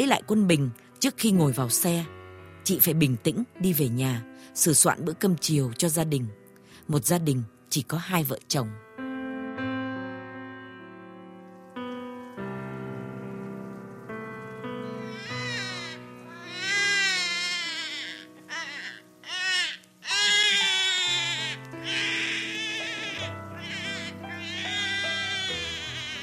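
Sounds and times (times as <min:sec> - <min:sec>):
speech: 0:00.0 - 0:08.8
soft sustained musical background: 0:00.0 - 0:26.2
newborn baby crying: 0:14.8 - 0:26.2.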